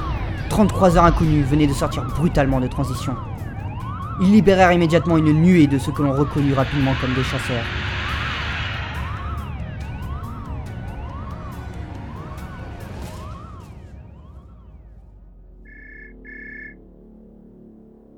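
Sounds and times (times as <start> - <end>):
warning alarms wailing: 0.0 - 14.5, 15.7 - 16.8
dense rumbling background: 0.0 - 18.1
speech: 0.5 - 3.3, 4.2 - 7.9
short electronic beeps: 15.7 - 16.8.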